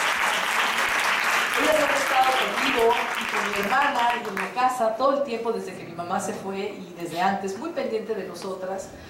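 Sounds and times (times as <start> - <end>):
audience applause: 0.0 - 4.5
speech: 2.4 - 9.0.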